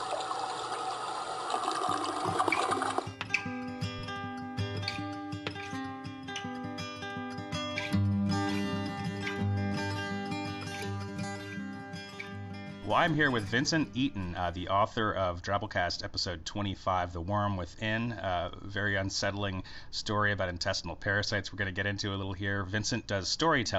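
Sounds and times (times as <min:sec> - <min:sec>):
toilet flushing: 0:00.0 - 0:03.2
music: 0:02.3 - 0:15.4
speech: 0:12.9 - 0:23.7.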